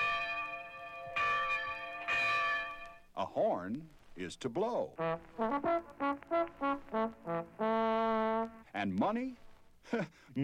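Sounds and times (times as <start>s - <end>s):
large resonant bell ringing: 0.0s - 3.2s
speech: 3.2s - 10.4s.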